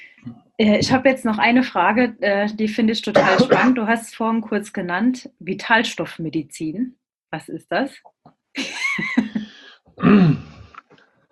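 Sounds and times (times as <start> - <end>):
speech: 0.2 - 9.2, 10.0 - 10.5
person coughing: 3.2 - 3.8, 9.2 - 10.8.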